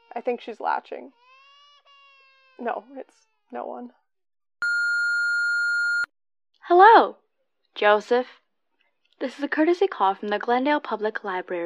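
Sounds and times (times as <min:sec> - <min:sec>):
speech: 0:00.2 - 0:01.2, 0:02.6 - 0:04.0, 0:06.7 - 0:07.2, 0:07.8 - 0:08.4, 0:09.2 - 0:11.6
answering machine message beep: 0:04.6 - 0:06.1.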